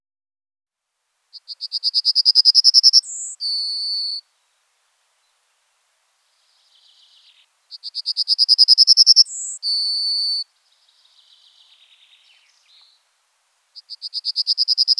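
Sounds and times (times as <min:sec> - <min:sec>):
yellowhammer Emberiza citrinella song: 0:01.3 - 0:04.3, 0:06.3 - 0:14.9.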